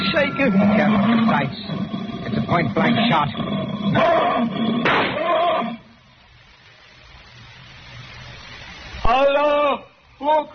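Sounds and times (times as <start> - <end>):
lion roaring: 0.0 - 5.9
speech: 0.2 - 5.8, 9.1 - 10.5.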